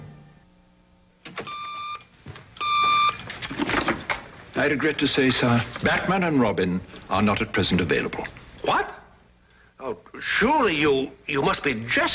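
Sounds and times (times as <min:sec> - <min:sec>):
telephone ringing in bright electronic bursts: 0:02.6 - 0:03.3
speech: 0:04.6 - 0:08.9, 0:09.9 - 0:12.1.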